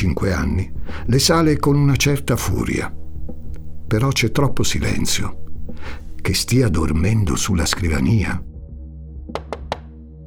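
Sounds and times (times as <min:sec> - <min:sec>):
speech: 0:00.0 - 0:03.0, 0:03.9 - 0:08.5
sharp knocks on a door: 0:09.3 - 0:09.9.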